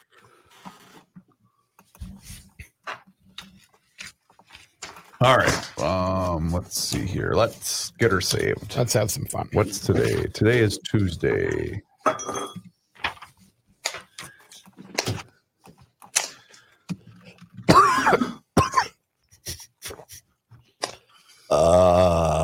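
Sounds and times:
speech: 5.2 - 12.3
dry unproductive cough: 17.6 - 20.1
throat clearing: 17.7 - 19.0
loud strained groan: 21.5 - 22.4.

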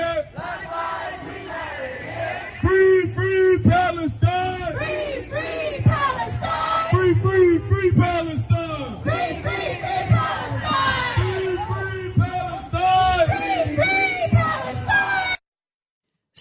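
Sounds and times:
crowd of street protesters chanting slogans: 0.0 - 15.4.

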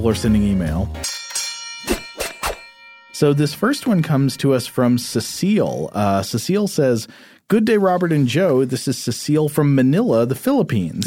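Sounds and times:
speech: 0.0 - 1.2, 3.2 - 11.0
bright bells ringing a festive Christmas tune: 0.0 - 6.6
sustained shimmering tone: 1.0 - 6.5.

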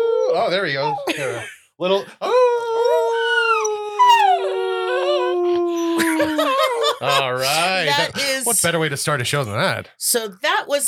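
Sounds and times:
dog howling: 0.0 - 1.1, 2.3 - 6.8
speech: 0.4 - 2.4, 7.0 - 10.8
laughter: 1.0 - 1.6, 5.5 - 8.5
dog yipping and whimpering: 2.8 - 5.3.

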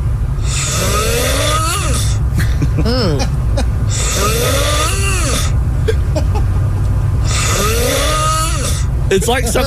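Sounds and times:
man snoring loudly with strained gasps: 0.4 - 2.2, 3.9 - 5.6, 7.2 - 8.9
laughter: 2.4 - 3.7, 5.9 - 6.5, 9.1 - 9.6
speech: 9.2 - 9.6.

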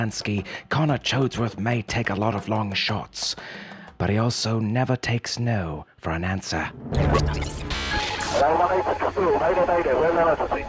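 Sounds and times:
speech: 0.0 - 7.7, 8.4 - 10.6
crackling radio static and hiss: 7.0 - 10.6.

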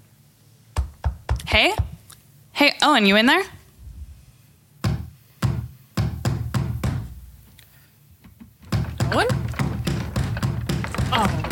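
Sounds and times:
loud heavy pounding on a door: 0.8 - 2.0, 4.8 - 7.2, 8.6 - 11.4
speech: 1.5 - 1.9, 2.6 - 3.6.

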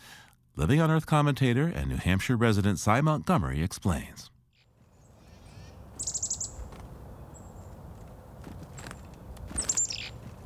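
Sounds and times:
speech: 0.6 - 4.3
chickadee scolding winter call: 4.6 - 7.7, 9.5 - 10.2.

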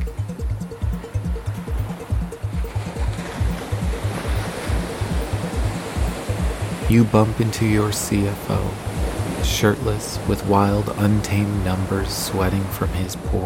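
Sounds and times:
rhythmic bass thump of music: 0.0 - 7.1
ocean breeze on a beach: 0.0 - 13.4
surf rushing on a beach with soft sand: 0.0 - 13.4
speech: 6.9 - 8.8, 9.5 - 13.4.

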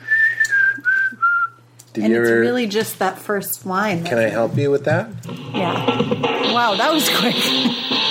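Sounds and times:
person whistling a tune: 0.0 - 1.6
speech: 2.0 - 8.0.

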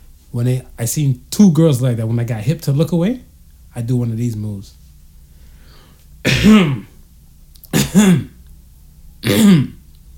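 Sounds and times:
speech: 0.3 - 4.8, 6.2 - 6.9, 7.9 - 8.3, 9.2 - 9.8
rough throat clearing from something caught in the throat: 6.3 - 7.0, 7.7 - 8.4, 9.2 - 9.8.

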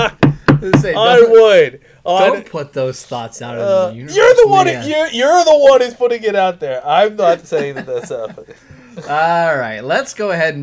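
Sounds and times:
knocking on wood above the microphone: 0.0 - 1.1
speech: 0.0 - 10.6
laughter: 7.0 - 9.4.

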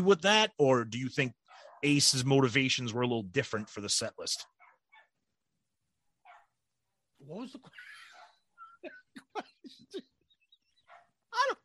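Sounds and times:
speech: 0.0 - 4.5, 7.2 - 8.0
dog barking outside: 1.4 - 2.2, 4.4 - 5.2, 6.2 - 6.6, 8.0 - 8.5, 10.8 - 11.2.

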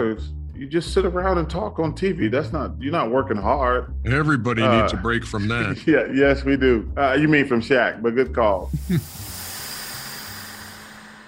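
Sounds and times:
speech: 0.0 - 9.3
steam hissing in a steam room: 8.6 - 11.2.

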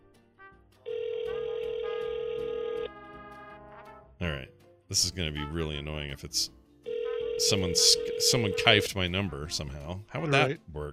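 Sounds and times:
telephone ringback tone on a Skype call: 0.9 - 3.0, 6.9 - 8.9
speech: 4.2 - 6.6, 7.4 - 10.9.

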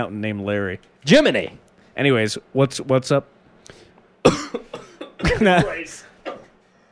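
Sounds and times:
speech: 0.0 - 3.4, 4.2 - 6.1
person in a coughing fit: 4.2 - 6.6.

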